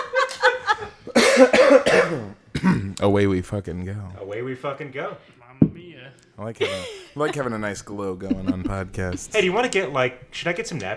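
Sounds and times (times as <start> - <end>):
laughter: 0.0 - 10.9
person coughing harshly: 1.1 - 3.0, 8.3 - 9.3
speech: 1.4 - 10.9.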